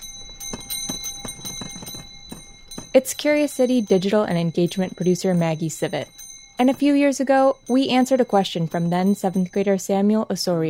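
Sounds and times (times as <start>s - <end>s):
ice cream cart bells ringing on Chicago sidewalks: 0.0s - 10.6s
speech: 2.9s - 10.6s.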